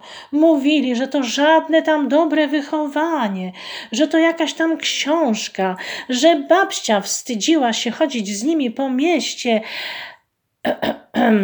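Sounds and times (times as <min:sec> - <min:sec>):
speech: 0:00.2 - 0:11.4
person clearing throat in embarrassment: 0:10.7 - 0:11.4.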